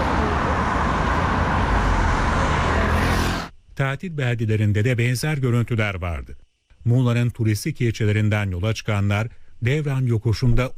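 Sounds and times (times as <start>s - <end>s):
heavy road traffic of cars, buses and trucks at a highway junction: 0.0s - 3.5s
speech: 3.8s - 10.7s.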